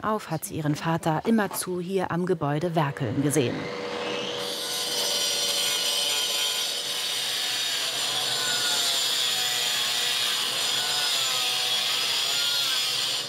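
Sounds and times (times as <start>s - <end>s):
speech: 0.0s - 3.9s
power tool grinding out mortar in a workshop: 2.8s - 13.2s.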